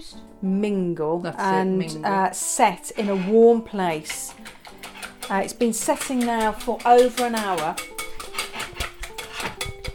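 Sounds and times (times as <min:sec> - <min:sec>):
speech: 0:00.0 - 0:04.6, 0:05.3 - 0:08.0
whisking risen yeasted pancake batter in a bowl: 0:02.8 - 0:09.9.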